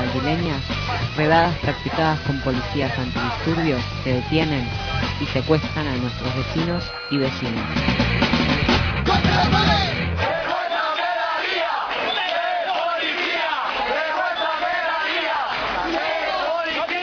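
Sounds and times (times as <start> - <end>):
large crowd shouting protest chants outdoors in a square: 0.0 - 5.4, 9.0 - 17.0
speech: 0.2 - 8.2, 9.0 - 10.0.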